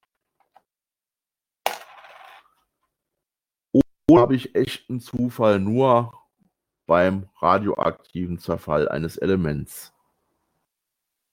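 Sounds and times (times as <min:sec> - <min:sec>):
coin landing and rattling on a hard surface: 0:01.7 - 0:02.6
speech: 0:04.1 - 0:06.2, 0:06.9 - 0:09.9.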